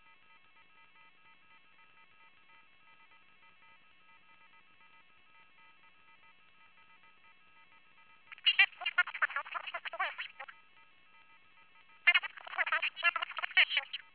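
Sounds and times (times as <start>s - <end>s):
voice scrambled by a DSP voice encryption device: 8.3s - 10.5s, 12.0s - 14.1s.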